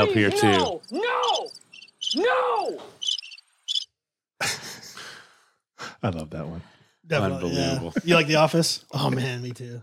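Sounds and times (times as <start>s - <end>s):
speech: 0.0s - 0.9s, 6.0s - 9.8s
cricket chirping sound effect played from a button: 0.4s - 2.2s, 3.0s - 3.9s.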